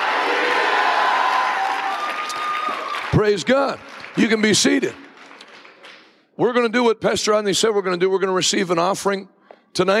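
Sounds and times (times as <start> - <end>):
large audience shouting hallelujah: 0.0 - 3.0
speech: 3.2 - 5.0, 6.4 - 9.9.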